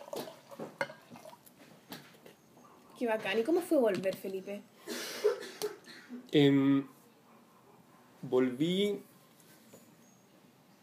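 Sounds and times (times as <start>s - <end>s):
water being poured: 0.0s - 1.6s
speech: 3.0s - 4.7s, 6.1s - 7.0s, 8.2s - 9.1s.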